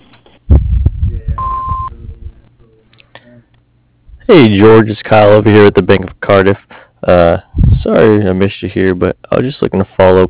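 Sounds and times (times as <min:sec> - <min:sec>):
low thumping and rumbling noise: 0:00.0 - 0:02.5, 0:07.5 - 0:07.9
electronic answering machine beep: 0:01.4 - 0:02.0
speech: 0:04.3 - 0:10.2.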